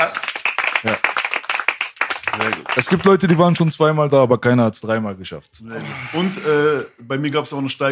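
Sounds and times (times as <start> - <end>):
small group applauding with hand clapping: 0.0 - 3.7
speech: 0.8 - 1.1, 2.4 - 7.9.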